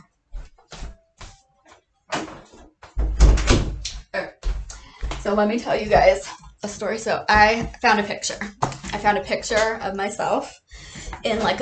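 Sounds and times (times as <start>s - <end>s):
door clicking and rattling as it moves: 2.1s - 3.8s
speech: 5.3s - 11.6s.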